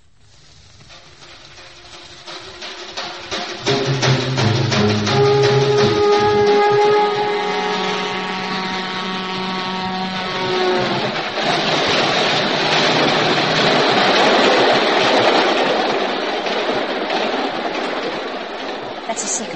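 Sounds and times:
express train rushing past: 0:00.2 - 0:19.5
faint rhythmic clatter of train wheels and rails: 0:00.4 - 0:19.5.

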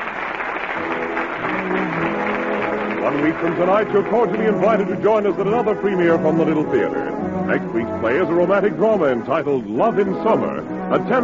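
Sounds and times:
large theater audience applause in an ovation: 0:00.0 - 0:05.9
speech: 0:03.1 - 0:11.2.

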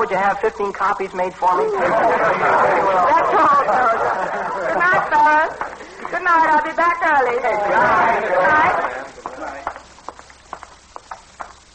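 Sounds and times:
speech: 0:00.0 - 0:09.0
faint noise: 0:00.0 - 0:11.7
laughter: 0:01.7 - 0:06.4, 0:07.4 - 0:09.8
horse hooves clip-clopping at a walking pace: 0:08.8 - 0:11.7.

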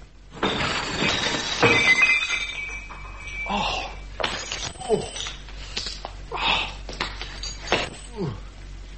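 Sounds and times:
plates and crockery crashing as a person falls onto a laden table: 0:00.3 - 0:06.0, 0:06.9 - 0:08.2.

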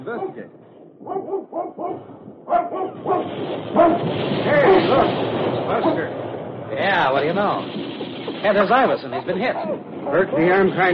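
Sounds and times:
dog barking: 0:00.1 - 0:05.1, 0:09.0 - 0:10.4
speech: 0:00.1 - 0:10.9.

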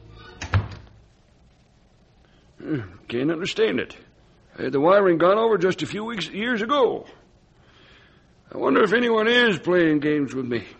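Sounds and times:
door closing thumps as someone walks out: 0:00.4 - 0:01.0
speech: 0:02.6 - 0:07.2, 0:08.5 - 0:10.7.

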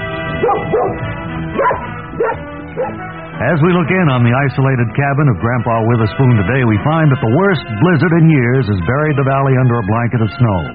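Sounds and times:
dog barking: 0:00.4 - 0:03.0
speech: 0:00.4 - 0:10.7.

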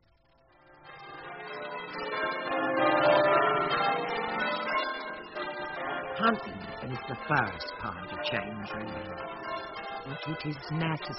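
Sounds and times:
church bells pealing: 0:00.6 - 0:11.1
speech: 0:06.2 - 0:09.4, 0:10.0 - 0:11.1.

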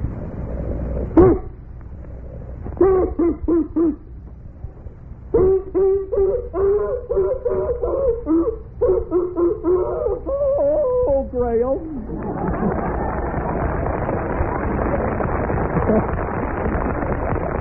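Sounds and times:
faint hum: 0:00.0 - 0:17.5
voice imitating a dog with yelping barks: 0:01.2 - 0:01.6, 0:02.8 - 0:04.1, 0:05.3 - 0:12.1
laughter: 0:12.0 - 0:17.0.

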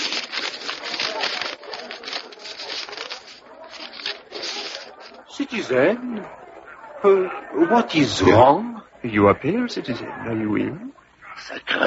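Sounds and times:
paper being unfolded and handled: 0:00.0 - 0:05.4
speech: 0:05.4 - 0:06.4, 0:07.0 - 0:11.8.

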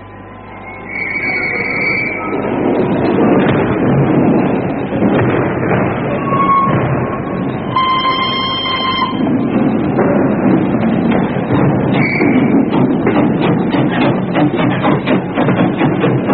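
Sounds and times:
high whistle-like tones: 0:00.0 - 0:02.4, 0:07.6 - 0:09.2, 0:12.0 - 0:12.4
train pulling away with rumble of wheels and carriages: 0:00.0 - 0:16.3
train horn-like blast: 0:07.7 - 0:09.2.

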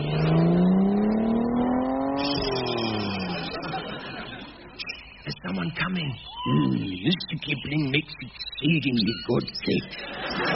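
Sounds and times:
car engine revving as the vehicle drives off: 0:00.0 - 0:04.6
laughter: 0:02.7 - 0:05.6, 0:06.4 - 0:10.5
speech: 0:05.7 - 0:10.5.

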